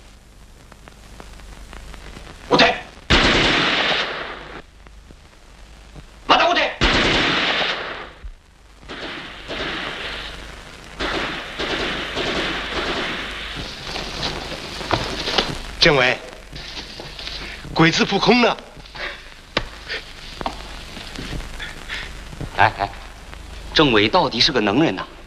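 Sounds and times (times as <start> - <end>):
rough rain-like noise: 0.0 - 25.2
gunfire in a wartime scene: 3.1 - 4.6, 6.8 - 8.2, 8.9 - 10.4, 11.0 - 15.5
speech: 15.8 - 16.2, 17.8 - 18.7, 23.8 - 25.1.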